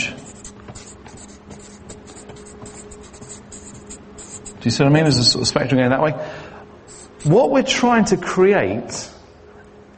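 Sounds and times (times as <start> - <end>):
pen strokes scratching across paper while writing and drawing: 0.0 - 4.6, 6.9 - 7.4
speech: 4.6 - 6.4, 7.2 - 9.2.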